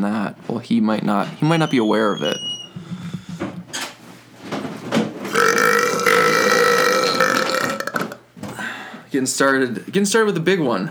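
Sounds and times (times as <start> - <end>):
speech: 0.6 - 2.5, 9.2 - 10.8
loud drawn-out burp: 5.3 - 8.3.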